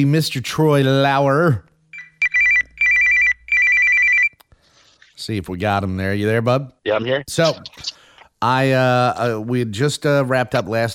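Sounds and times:
speech: 0.0s - 1.7s, 5.2s - 10.9s
telephone ringback tone with electronic trilling bursts: 2.0s - 4.3s.

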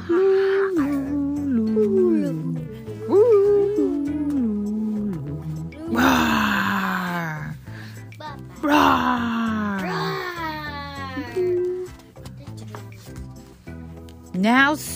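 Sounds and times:
voice imitating wild monsters howling and wailing: 0.0s - 7.6s, 8.6s - 11.3s
voice imitating wild monsters with rough throaty roars: 4.9s - 7.7s, 8.6s - 10.6s.

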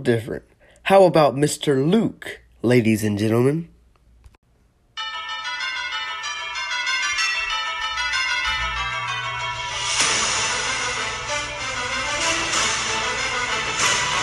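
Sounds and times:
speech: 0.0s - 3.7s
bells ringing in an overlapping peal: 5.0s - 14.2s.

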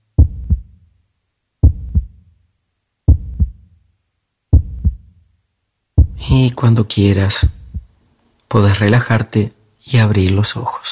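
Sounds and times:
heartbeat with deep lub-dub thumps: 0.1s - 0.8s, 1.6s - 2.3s, 3.1s - 3.8s, 4.5s - 5.2s, 6.0s - 6.4s, 7.4s - 8.0s
speech: 6.3s - 7.6s, 8.5s - 10.8s.

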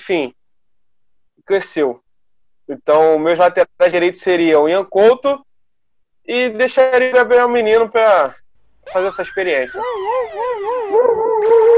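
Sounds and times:
speech: 0.0s - 0.4s, 1.4s - 2.0s, 2.7s - 5.5s, 6.3s - 11.7s
police siren wailing: 8.9s - 11.7s.

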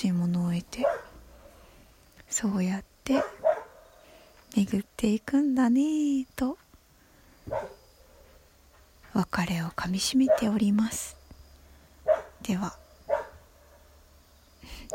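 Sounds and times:
dog barking: 0.8s - 1.2s, 3.1s - 4.0s, 7.5s - 8.4s, 10.2s - 10.6s, 12.0s - 12.4s, 13.1s - 13.8s
speech: 2.4s - 3.4s, 4.5s - 6.6s, 7.4s - 7.8s, 9.2s - 11.2s, 12.4s - 12.8s.

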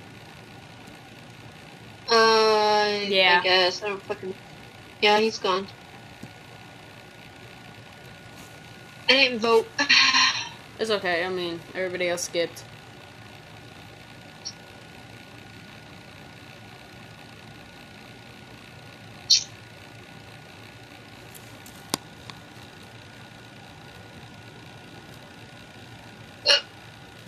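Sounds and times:
faint steady hum: 0.0s - 27.2s
speech: 3.1s - 5.8s, 9.1s - 10.0s, 10.8s - 12.7s
sharp hiccups: 26.5s - 26.7s.

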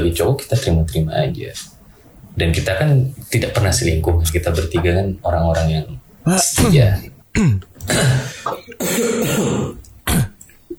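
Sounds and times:
speech: 0.0s - 1.8s, 2.4s - 9.8s
person coughing: 7.3s - 10.4s
harsh throat clearing: 7.3s - 10.7s.

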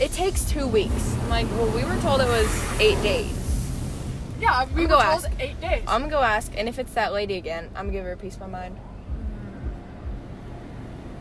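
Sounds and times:
speech: 0.0s - 3.4s, 4.4s - 8.8s
spraying water hiss: 0.0s - 6.4s
automatic car wash running: 0.0s - 7.2s
deep low thuds: 0.0s - 11.1s.

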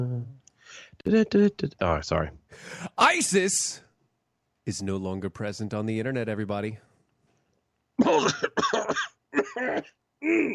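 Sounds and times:
speech: 0.7s - 3.8s, 4.7s - 6.9s, 8.0s - 10.5s
man clearing his throat: 8.0s - 10.5s
man coughing: 8.0s - 10.5s.

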